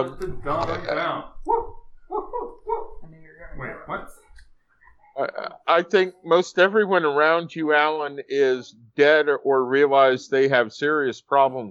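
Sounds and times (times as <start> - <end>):
speech: 0.0 - 1.7, 5.2 - 11.6
dogs rough barking: 1.5 - 3.0.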